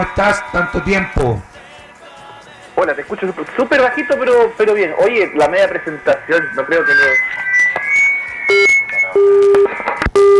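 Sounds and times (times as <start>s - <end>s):
speech: 0.0s - 1.5s, 2.8s - 7.4s
clicks and crackle from a failing phone line: 3.1s - 10.3s
low electronic beeps as a phone call cuts off: 3.6s - 10.3s.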